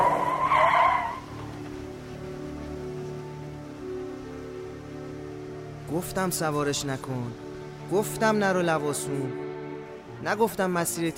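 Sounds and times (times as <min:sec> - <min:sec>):
car skidding while speeding on a dirt road: 0:00.0 - 0:01.3
speech: 0:05.9 - 0:09.4, 0:10.2 - 0:11.1.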